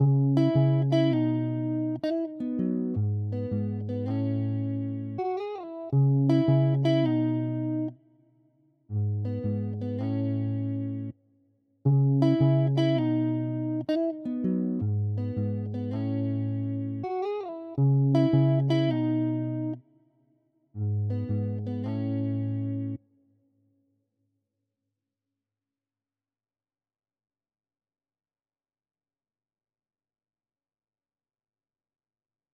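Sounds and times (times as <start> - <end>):
guitar loop in E major at 162 BPM: 0.0 - 7.9, 9.0 - 11.1, 11.9 - 19.8, 20.8 - 23.0.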